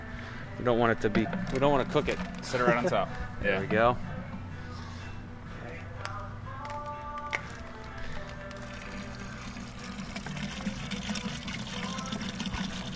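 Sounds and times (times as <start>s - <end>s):
speech: 0.6s - 4.1s
water pouring into a metal beer brewing pot: 8.6s - 12.9s.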